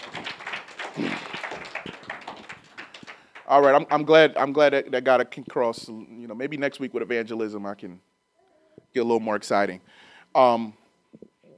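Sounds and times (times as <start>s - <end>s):
crowd clapping: 0.0s - 4.3s
speech: 3.5s - 8.1s, 8.9s - 11.2s.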